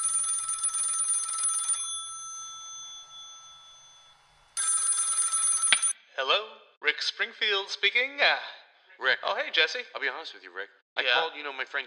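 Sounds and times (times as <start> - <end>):
telephone ringing with electronic trill: 0.0 - 6.0
speech: 6.2 - 11.8.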